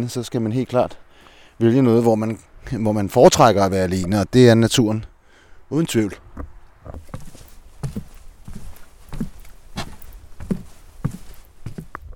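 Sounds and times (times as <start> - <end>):
speech: 0.0 - 1.0, 1.6 - 5.1, 5.7 - 7.1
soft outdoor hiss: 0.0 - 12.1
footsteps on a wooden bridge: 6.2 - 12.1.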